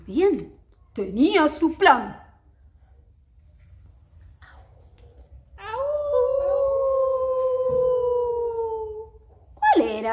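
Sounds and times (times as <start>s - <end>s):
speech: 0.1s - 2.2s
wolf howling: 5.6s - 9.0s.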